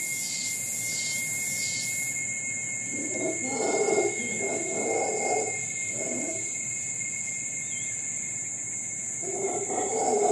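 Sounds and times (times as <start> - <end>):
insects buzzing in Costa Rica: 0.0 - 10.3
howler monkey roaring in Costa Rica: 3.0 - 6.4, 9.2 - 10.3.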